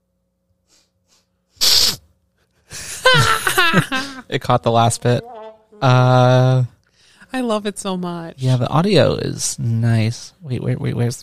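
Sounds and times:
person sniffling at the microphone: 0.7s - 2.1s
laughter: 2.7s - 4.3s
speech: 3.7s - 6.7s, 7.3s - 11.2s.

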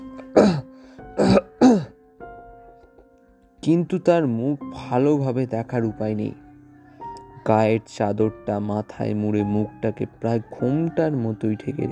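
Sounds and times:
man coughing: 0.2s - 2.0s
speech: 3.6s - 6.4s, 7.4s - 11.8s.

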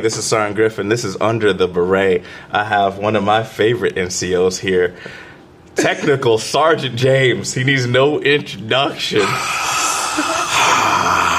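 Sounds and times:
speech: 0.0s - 10.4s
heavy airy breathing into a microphone: 2.2s - 2.5s, 4.9s - 5.6s.

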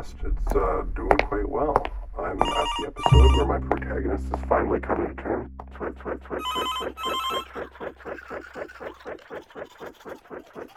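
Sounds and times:
speech: 0.0s - 10.7s
telephone trilling electronic double ring: 2.4s - 3.4s, 6.4s - 7.4s
steady pulsing beat: 2.4s - 9.2s.

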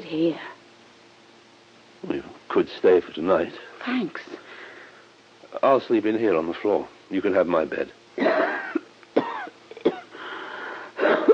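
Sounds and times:
speech: 0.1s - 0.6s, 2.0s - 4.5s, 5.5s - 8.5s
harsh wheezy cough: 8.2s - 10.2s, 11.0s - 11.3s.

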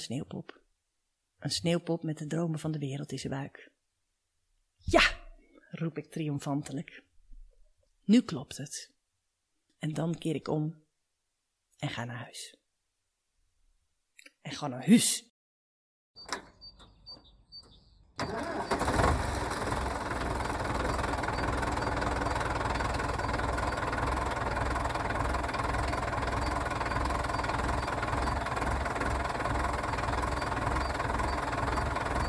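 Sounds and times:
speech: 0.0s - 0.6s, 1.4s - 3.8s, 4.8s - 7.1s, 8.1s - 8.9s, 9.8s - 10.8s, 11.8s - 12.6s, 14.4s - 15.3s
old tractor engine cranking and running: 16.2s - 32.2s.

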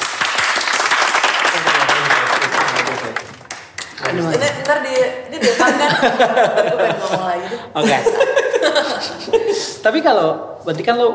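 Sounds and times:
crowd applause: 0.0s - 5.1s
speech: 4.2s - 11.1s
laughter: 5.2s - 9.8s.

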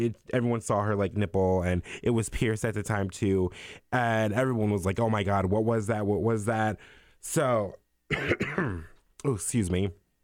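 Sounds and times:
speech: 0.0s - 10.0s
person coughing: 8.1s - 9.0s
throat clearing: 8.1s - 9.0s.

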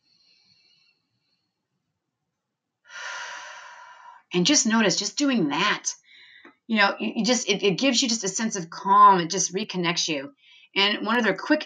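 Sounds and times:
deep breath in: 2.9s - 4.3s, 6.0s - 6.5s
speech: 4.3s - 6.0s, 6.7s - 11.6s.

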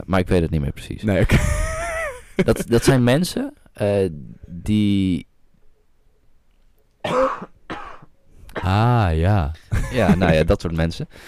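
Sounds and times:
speech: 0.0s - 1.7s, 2.4s - 5.3s, 8.6s - 11.2s
laughter: 1.3s - 3.1s, 9.7s - 10.5s
person coughing roughly: 7.0s - 8.8s.

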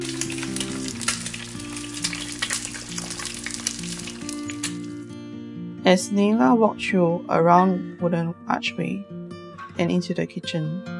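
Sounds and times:
eggs frying on a stove: 0.0s - 5.0s
speech: 5.9s - 9.2s, 9.8s - 10.9s.

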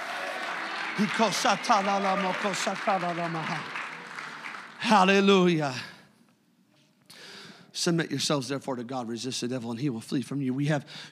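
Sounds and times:
audience clapping and shouting: 0.0s - 5.3s
speech: 1.0s - 3.8s, 4.8s - 5.9s, 7.8s - 11.1s.

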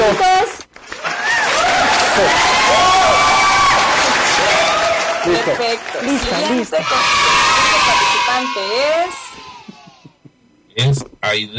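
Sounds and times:
outdoor audience clapping in the historic centre of Chihuahua: 0.0s - 8.0s
outdoor audience cheering in the historic centre of Chihuahua: 0.9s - 10.2s
audience shouts and whoops: 1.0s - 5.5s, 6.4s - 10.1s
speech: 5.5s - 9.5s, 10.8s - 11.5s.

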